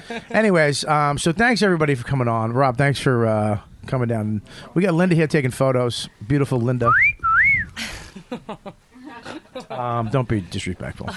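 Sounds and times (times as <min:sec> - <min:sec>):
speech: 0:00.1 - 0:07.2, 0:07.8 - 0:11.1
wolf whistle aimed at a woman: 0:06.9 - 0:07.8
laughter: 0:07.8 - 0:11.1.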